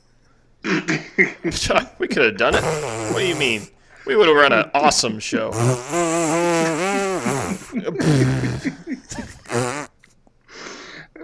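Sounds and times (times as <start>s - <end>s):
speech: 0.8s - 9.6s
two voices blowing raspberries imitating an elephant fart: 2.5s - 3.7s, 5.5s - 9.9s
short breathy blast: 2.5s - 4.1s, 5.5s - 11.1s.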